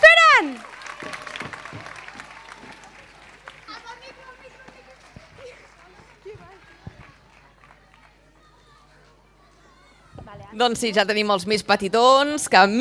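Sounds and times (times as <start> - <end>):
audience clapping steadily: 0.0 - 9.2
scattered crowd noise: 0.0 - 12.7
speech: 10.6 - 12.7.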